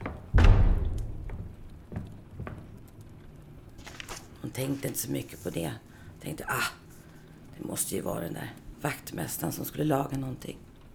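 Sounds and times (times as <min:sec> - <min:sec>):
door slamming shut: 0:00.0 - 0:02.1
speech: 0:04.6 - 0:06.8, 0:07.6 - 0:10.7.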